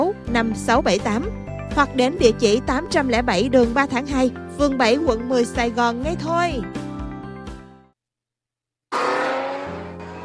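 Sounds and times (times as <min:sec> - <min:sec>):
speech: 0:00.1 - 0:06.8
Formula 1 race cars speeding past at the Melbourne Grand Prix: 0:08.9 - 0:10.2.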